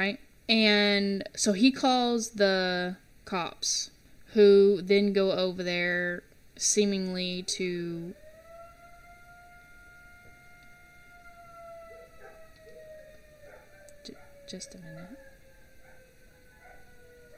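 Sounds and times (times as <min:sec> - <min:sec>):
speech: 0:00.0 - 0:08.2, 0:14.1 - 0:15.2
noon civil defense siren wailing: 0:07.0 - 0:17.3
faint dogs howling at siren: 0:07.2 - 0:17.3.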